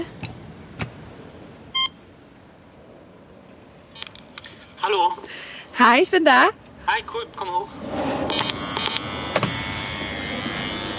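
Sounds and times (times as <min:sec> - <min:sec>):
light outdoor noise: 0:00.0 - 0:10.9
short electronic beep from an intercom doorbell: 0:01.7 - 0:02.0
speech: 0:04.9 - 0:08.2.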